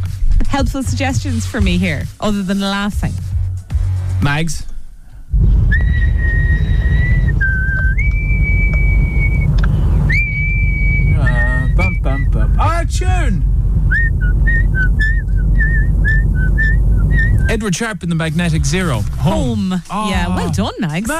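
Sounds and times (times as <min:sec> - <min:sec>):
steady low rumble: 0:00.0 - 0:21.1
speech: 0:00.5 - 0:03.3, 0:04.2 - 0:04.7, 0:11.8 - 0:13.5, 0:17.5 - 0:21.1
person whistling a clear bright tune: 0:05.7 - 0:12.6, 0:13.9 - 0:17.5.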